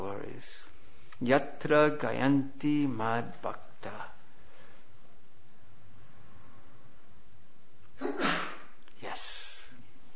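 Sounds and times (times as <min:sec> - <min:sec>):
room hiss: 0:00.0 - 0:10.1
speech: 0:01.2 - 0:03.6
person sneezing: 0:08.0 - 0:08.8.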